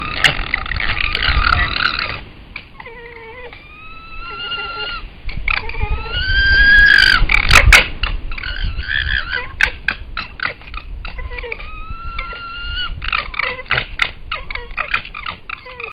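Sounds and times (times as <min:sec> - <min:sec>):
red fox vocalisations while trotting in dispute: 0:00.0 - 0:15.9.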